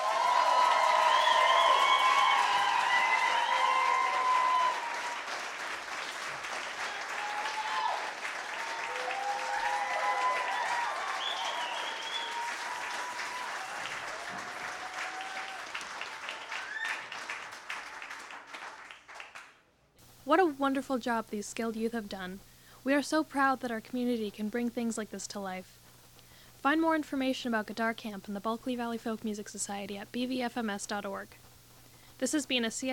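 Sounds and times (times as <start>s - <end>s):
scattered audience cheers: 0.0s - 5.7s, 6.6s - 17.2s
audience applause: 0.0s - 19.6s
speech: 20.3s - 25.8s, 26.6s - 31.5s, 32.2s - 32.9s.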